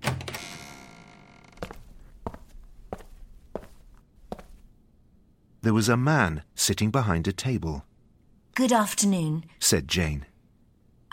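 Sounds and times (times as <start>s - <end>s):
door creaking and clunking open: 0.0s - 1.8s
footsteps treading into a quiet room: 1.4s - 4.7s
speech: 5.7s - 7.9s, 8.6s - 10.3s.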